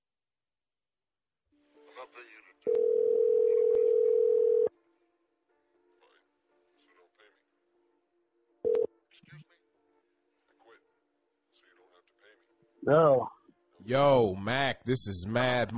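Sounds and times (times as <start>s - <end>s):
phone call ring tone through a mixing console: 2.7s - 4.7s, 8.6s - 8.9s
speech: 12.8s - 13.3s, 13.9s - 15.7s.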